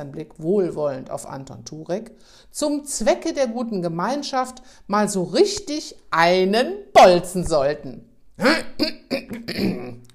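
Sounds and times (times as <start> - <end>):
speech: 0.0 - 10.0
man clearing throat: 8.4 - 10.1.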